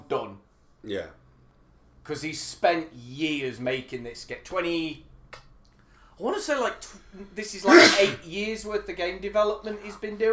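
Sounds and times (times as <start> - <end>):
speech: 0.1 - 1.2, 2.0 - 5.4, 6.2 - 10.3
person sneezing: 7.7 - 8.2.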